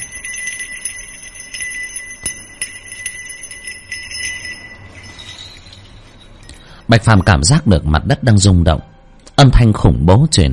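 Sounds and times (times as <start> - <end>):
tinkling bells: 0.0 - 7.9
speech: 6.9 - 10.5.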